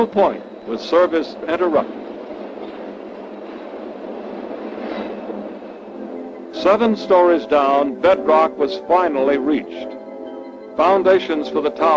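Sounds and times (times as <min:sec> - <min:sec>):
speech: 0:00.0 - 0:02.0, 0:06.6 - 0:10.0, 0:10.8 - 0:11.9
PATH commuter train rumbling and rattling on rails: 0:00.0 - 0:11.9.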